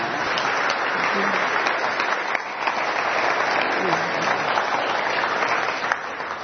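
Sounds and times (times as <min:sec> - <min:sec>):
sustained applause from a sizable audience: 0:00.0 - 0:06.4.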